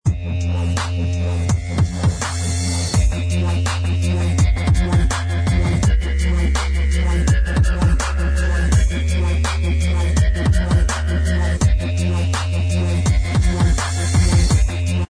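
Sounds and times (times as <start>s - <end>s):
instrumental dubstep remix: 0.0s - 15.0s.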